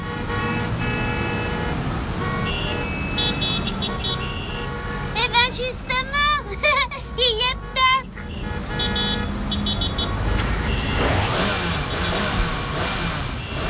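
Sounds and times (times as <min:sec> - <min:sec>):
busy street traffic rumbling: 0:00.0 - 0:13.6
car horns honking: 0:00.0 - 0:13.6
car engine roaring and revving: 0:08.6 - 0:13.6.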